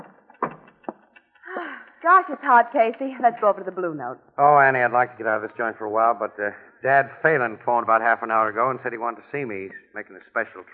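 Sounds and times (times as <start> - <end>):
door latch and handle knocks: 0.0 - 1.2
speech: 2.0 - 10.7.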